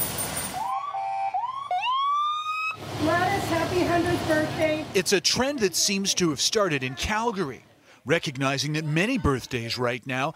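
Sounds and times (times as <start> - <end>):
fire department pumper truck electronic siren wailing: 0.5 - 5.0
speech: 3.4 - 10.3.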